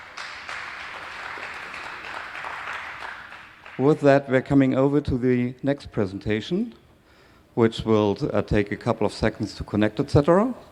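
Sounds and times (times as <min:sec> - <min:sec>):
audience applause after a talk at a presentation event: 0:00.0 - 0:03.8
speech: 0:03.8 - 0:06.8, 0:07.6 - 0:10.7.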